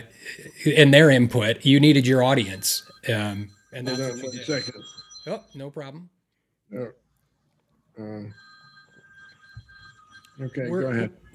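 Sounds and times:
telephone ringing with a high electronic tone: 0:00.0 - 0:05.8, 0:08.1 - 0:11.3
speech: 0:00.0 - 0:07.0, 0:08.0 - 0:08.4, 0:10.4 - 0:11.2.

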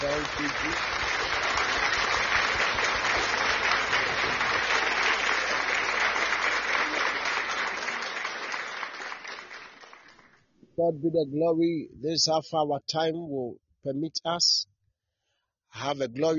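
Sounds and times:
audience clapping in joy: 0:00.0 - 0:10.4
speech: 0:00.2 - 0:01.2, 0:10.8 - 0:14.7, 0:15.7 - 0:16.3.

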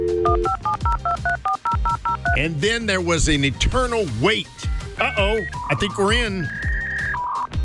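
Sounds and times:
touch-tone beeps of a phone number being dialed for a dial-up modem: 0:00.0 - 0:02.4, 0:06.4 - 0:07.5
speech: 0:02.4 - 0:06.7.

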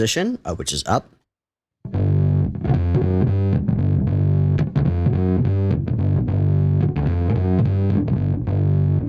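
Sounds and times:
speech: 0:00.0 - 0:01.2
electric guitar through fuzz pedal with bass-boost capacitor option playing distorted chords: 0:01.9 - 0:09.0.

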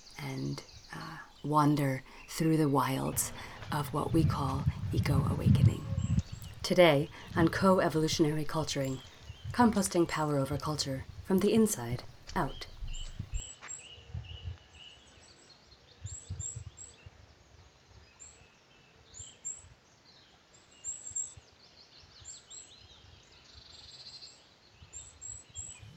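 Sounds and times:
low uneven rumbling noise: 0:00.0 - 0:13.4
faint outdoor birdsong: 0:00.0 - 0:13.5
speech: 0:00.4 - 0:00.7, 0:01.4 - 0:05.8, 0:06.7 - 0:12.7.

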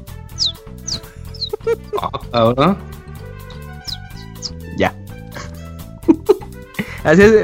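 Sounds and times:
voice imitating a baby chick peeping: 0:00.4 - 0:01.9, 0:03.9 - 0:04.5
laughter: 0:01.0 - 0:02.3
speech: 0:01.7 - 0:03.0, 0:07.0 - 0:07.4.

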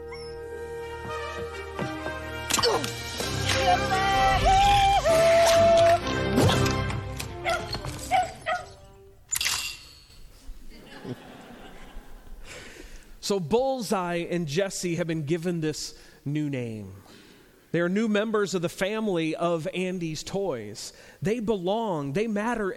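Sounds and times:
music playing: 0:00.0 - 0:09.1
dog barking: 0:07.4 - 0:08.8
laughter: 0:10.7 - 0:12.4
speech: 0:13.3 - 0:17.0, 0:17.7 - 0:22.7.

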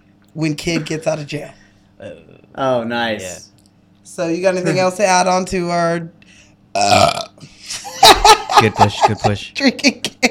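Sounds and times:
speech: 0:00.4 - 0:07.5, 0:08.6 - 0:10.2
loud burp: 0:06.7 - 0:07.4
laughter: 0:07.6 - 0:09.5.

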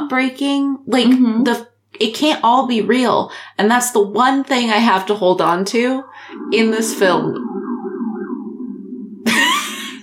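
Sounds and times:
speech: 0:00.1 - 0:07.5
police siren wailing outside an apartment: 0:05.9 - 0:10.0.

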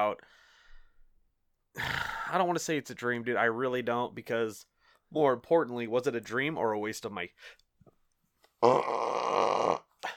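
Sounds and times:
speech: 0:00.0 - 0:00.4, 0:01.8 - 0:07.6, 0:08.6 - 0:09.3
muffled burp: 0:01.8 - 0:02.3, 0:08.6 - 0:10.1.

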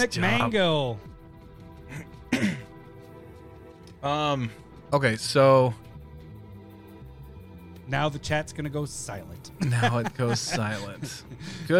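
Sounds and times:
speech: 0:00.0 - 0:01.1, 0:04.0 - 0:05.8, 0:07.9 - 0:11.7
throat clearing into a microphone: 0:01.9 - 0:02.7
laughter: 0:09.6 - 0:11.7.

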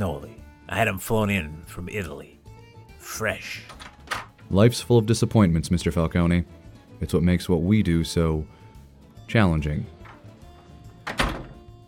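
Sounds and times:
speech: 0:00.0 - 0:02.4, 0:03.0 - 0:03.8, 0:04.5 - 0:08.6, 0:09.3 - 0:10.0
door pushed shut with a solid thunk: 0:03.6 - 0:04.4, 0:10.9 - 0:11.8.

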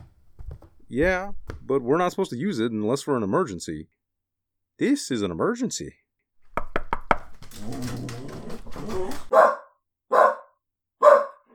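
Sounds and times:
quick knocks: 0:00.0 - 0:01.9, 0:06.4 - 0:09.3
speech: 0:00.9 - 0:04.0, 0:04.8 - 0:06.0
dog barking sharply: 0:08.8 - 0:11.5.

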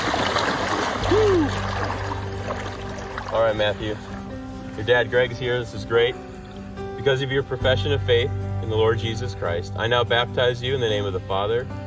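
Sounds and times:
water sloshing and splashing as people wade in: 0:00.0 - 0:06.8
speech: 0:03.3 - 0:04.2, 0:04.8 - 0:06.3, 0:07.0 - 0:11.8.

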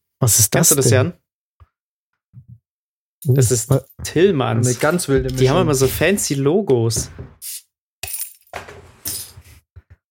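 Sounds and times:
speech: 0:00.2 - 0:01.2, 0:03.2 - 0:07.6
beer bottle opening with a brief hiss: 0:07.4 - 0:07.7.

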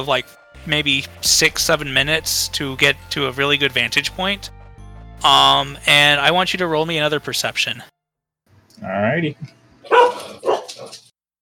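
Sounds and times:
speech: 0:00.0 - 0:04.6, 0:05.2 - 0:07.9, 0:08.8 - 0:11.0
corgi barking loudly: 0:09.8 - 0:11.0.

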